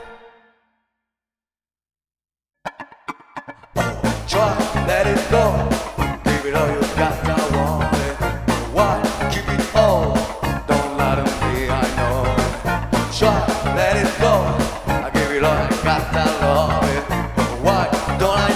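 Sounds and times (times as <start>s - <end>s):
male pop singer singing: 3.8s - 18.5s.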